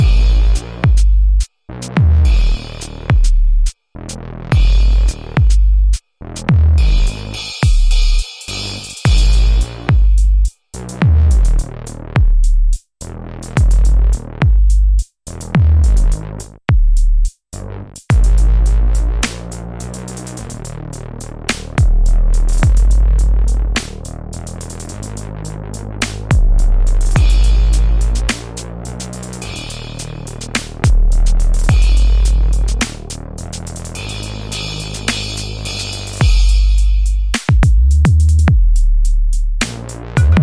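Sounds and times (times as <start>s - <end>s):
drum and bass trap beat: 0.0s - 40.4s.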